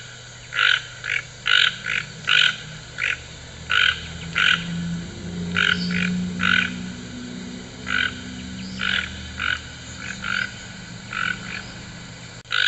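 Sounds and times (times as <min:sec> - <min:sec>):
low continuous hum: 0:00.0 - 0:12.6
toucan giving croaking calls: 0:00.0 - 0:12.6.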